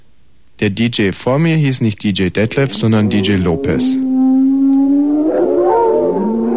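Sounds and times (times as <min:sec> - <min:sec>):
speech: 0:00.6 - 0:04.1
wild dogs and wolves howling in Kreuzberg: 0:02.6 - 0:06.5.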